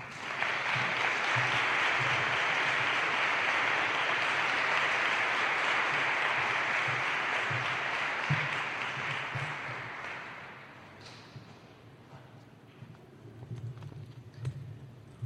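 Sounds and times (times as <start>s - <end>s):
audience applause welcoming a speaker: 0.0s - 10.8s.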